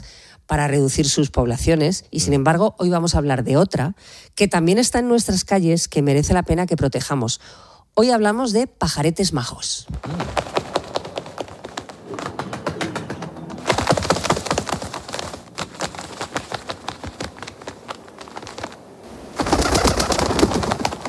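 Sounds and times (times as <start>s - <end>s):
speech: 0.5s - 10.5s
fluttering and tapping: 9.9s - 18.8s, 19.4s - 21.0s
pigeons cooing: 10.0s - 21.0s.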